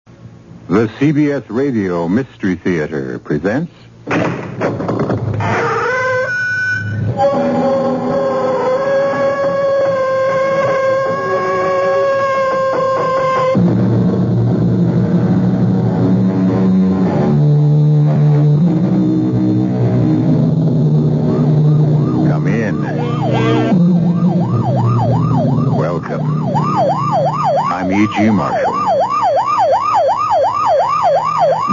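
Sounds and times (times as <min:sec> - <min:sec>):
speech: 0:00.7 - 0:04.4
police car or ambulance siren wailing: 0:05.4 - 0:31.7
steady tones: 0:06.3 - 0:31.7.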